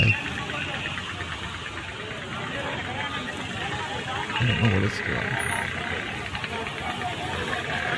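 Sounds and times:
indistinct voices: 0:00.0 - 0:00.4, 0:03.9 - 0:07.9
many cars and motorcycles idling together: 0:00.0 - 0:07.9
rattling engine knock: 0:00.0 - 0:07.9
speech: 0:04.4 - 0:05.8.

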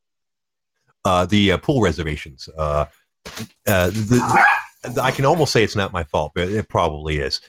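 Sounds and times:
speech: 0:01.0 - 0:07.4
small dog barking and yapping: 0:04.2 - 0:04.8.

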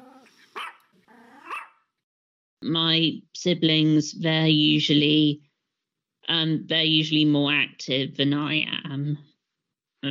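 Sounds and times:
dog barking: 0:00.0 - 0:01.8
speech: 0:02.6 - 0:05.5, 0:06.3 - 0:09.3.

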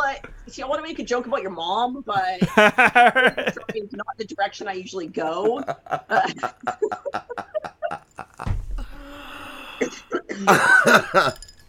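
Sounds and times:
speech: 0:00.2 - 0:08.6, 0:09.8 - 0:11.5
laughter: 0:02.2 - 0:04.0, 0:05.1 - 0:08.5, 0:10.3 - 0:11.4
short breathy bursts: 0:07.8 - 0:10.1
loud harsh cough: 0:09.8 - 0:11.4.

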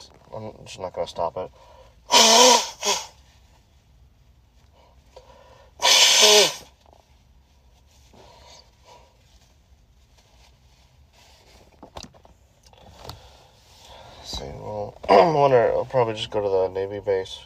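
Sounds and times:
quiet rustling: 0:00.0 - 0:02.0, 0:03.2 - 0:05.6, 0:06.7 - 0:17.4
speech: 0:00.4 - 0:02.6, 0:16.2 - 0:17.4
nose blowing: 0:02.1 - 0:03.2, 0:05.8 - 0:06.8.

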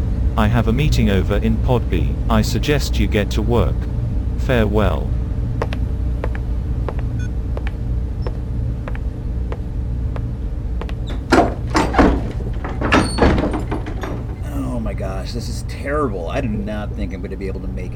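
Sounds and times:
low steady hum: 0:00.0 - 0:17.9
speech: 0:00.4 - 0:05.2, 0:15.4 - 0:17.9
door sliding open and shut with whooshing: 0:11.0 - 0:14.6.

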